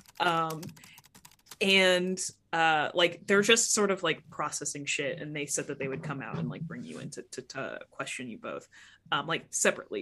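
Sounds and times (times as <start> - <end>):
old 90s computer keyboard clacking as a secretary types at a front desk: 0.0 - 1.7
speech: 0.2 - 0.9, 1.6 - 10.0.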